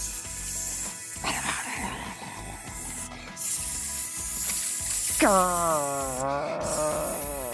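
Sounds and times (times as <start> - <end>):
snakes hissing: 0.0 - 7.5
high tonal cry: 5.2 - 7.5.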